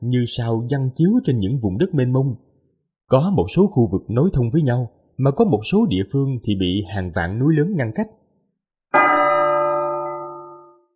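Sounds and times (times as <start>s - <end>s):
speech: 0.0s - 2.5s, 3.1s - 8.2s
strange bell ringing with one struck tone: 9.0s - 10.9s.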